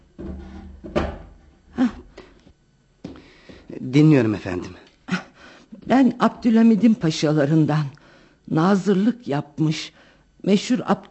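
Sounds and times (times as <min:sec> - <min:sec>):
chair dragged and shifted on the floor: 0:00.0 - 0:01.4
speech: 0:03.8 - 0:04.8, 0:05.9 - 0:11.0.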